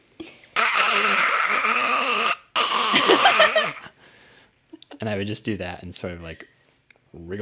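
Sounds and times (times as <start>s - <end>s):
person's voice imitating a zombie-like monster growl: 0.6s - 3.9s
speech: 5.1s - 6.6s, 7.2s - 7.4s.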